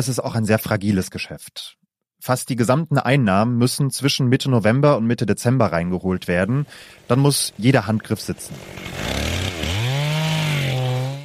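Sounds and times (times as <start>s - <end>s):
speech: 0.0s - 9.2s
chainsaw sawing down Christmas trees: 8.4s - 11.2s.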